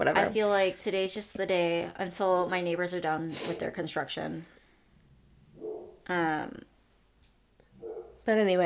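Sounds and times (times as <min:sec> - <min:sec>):
speech: 0:00.0 - 0:04.6, 0:06.1 - 0:06.7, 0:08.2 - 0:08.6
dog barking: 0:05.6 - 0:06.0, 0:07.8 - 0:08.2.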